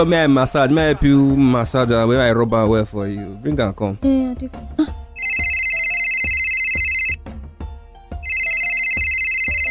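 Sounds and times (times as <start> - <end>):
speech: 0.0 - 4.9
loud phone ringtone with bright warbling tones: 5.2 - 7.2, 8.2 - 9.6.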